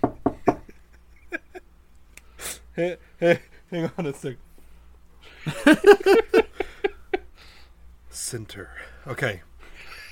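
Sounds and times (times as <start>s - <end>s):
knocking on a door: 0.0s - 0.7s
speech: 2.8s - 4.4s, 5.6s - 6.4s, 8.3s - 9.5s
laughter: 5.4s - 7.2s.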